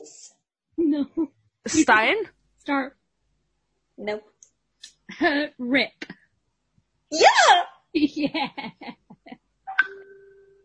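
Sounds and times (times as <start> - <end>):
speech: 0.8 - 3.0, 4.0 - 4.3, 5.1 - 6.1, 7.1 - 9.0
people laughing: 8.0 - 9.4
messaging app notification ding: 9.7 - 10.6.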